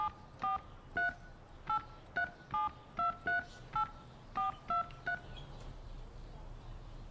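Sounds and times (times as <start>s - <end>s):
telephone keypad tones entering numbers on an automated phone line: 0.0s - 5.3s
faint noise: 0.0s - 7.0s.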